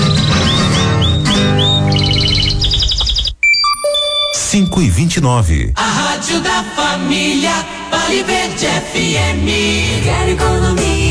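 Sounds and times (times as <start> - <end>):
canary singing: 0.0 - 4.4
instrumental music: 0.0 - 4.7
speech: 4.5 - 11.1.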